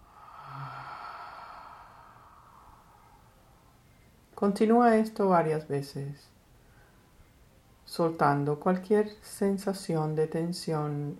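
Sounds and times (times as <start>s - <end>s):
breath exhaled through the mouth during a guided breathing exercise: 0.0s - 3.3s
speech: 4.4s - 6.3s, 7.9s - 11.1s.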